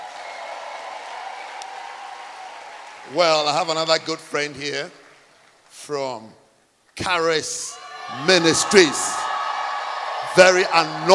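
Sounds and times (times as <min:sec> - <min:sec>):
crowd applause of many hands clapping: 0:00.0 - 0:05.5, 0:08.0 - 0:11.1
speech: 0:03.0 - 0:05.0, 0:05.8 - 0:06.4, 0:07.0 - 0:09.2, 0:10.3 - 0:11.1.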